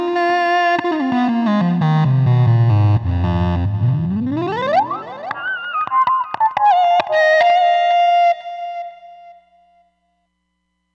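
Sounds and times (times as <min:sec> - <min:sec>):
synth lead on Roland Fantom XR: 0:00.1 - 0:08.8.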